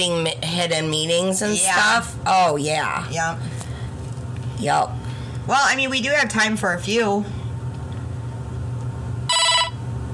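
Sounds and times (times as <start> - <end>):
speech: 0.0 - 3.6, 4.6 - 7.4
low hum: 0.0 - 10.1
phone ringing: 9.3 - 9.8.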